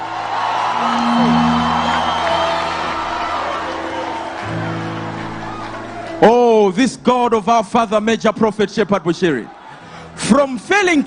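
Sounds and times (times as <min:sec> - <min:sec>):
large church audience screaming and cheering: 0:00.0 - 0:06.7
speech: 0:06.2 - 0:09.6, 0:10.2 - 0:11.0.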